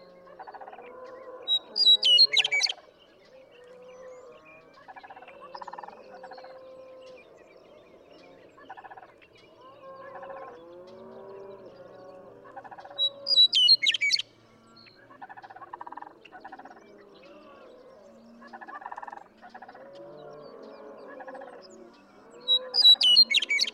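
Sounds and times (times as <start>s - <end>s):
Western meadowlark singing: 1.5s - 2.8s, 13.0s - 14.3s, 22.4s - 23.7s.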